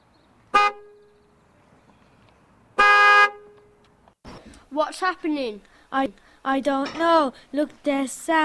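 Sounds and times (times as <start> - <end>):
low hum of traffic: 0.0 - 8.3
car horn honking in a traffic jam: 0.5 - 1.1, 2.8 - 3.7
speech: 4.7 - 8.4.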